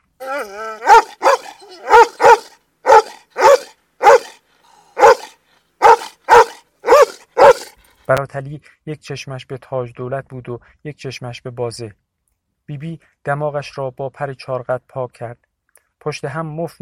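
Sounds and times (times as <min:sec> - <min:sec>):
dog wavering howl-like whine: 0:00.2 - 0:04.3
dog barking loudly: 0:00.4 - 0:04.4, 0:05.0 - 0:07.8
speech: 0:08.1 - 0:12.0, 0:12.7 - 0:16.8.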